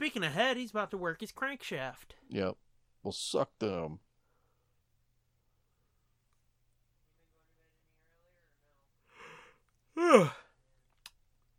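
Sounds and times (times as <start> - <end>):
speech: 0.0 - 4.1, 10.0 - 10.4
breathy intake of air: 9.1 - 10.4
loud voiced yawn: 9.2 - 10.6.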